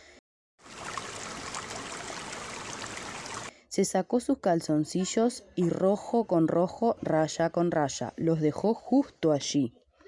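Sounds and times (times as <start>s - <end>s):
river water flowing: 0.6s - 3.5s
speech: 3.7s - 9.8s.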